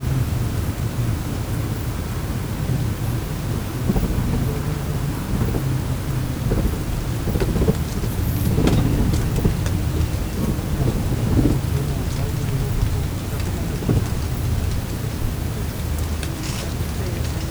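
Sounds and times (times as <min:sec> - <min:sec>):
several people talking quietly in a cave: 0:00.0 - 0:17.4
bats flying in a cave: 0:01.7 - 0:17.4.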